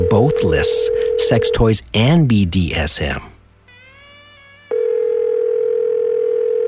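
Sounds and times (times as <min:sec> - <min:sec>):
telephone ring tone of an unanswered call heard through the line: 0:00.0 - 0:01.6, 0:04.7 - 0:06.6
speech: 0:00.2 - 0:03.3.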